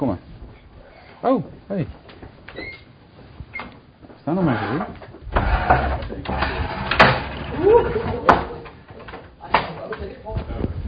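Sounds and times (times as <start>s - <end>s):
speech: 0.0s - 0.3s, 1.2s - 2.2s, 4.3s - 5.0s
wooden door pushed shut with thuds and clicks: 5.3s - 8.8s
people murmuring and talking faintly: 7.3s - 8.9s.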